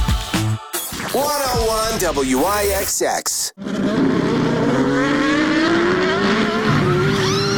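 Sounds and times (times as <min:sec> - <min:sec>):
speech: 0:01.1 - 0:04.1
prototype and GT race cars roaring past at an endurance race: 0:03.6 - 0:07.5.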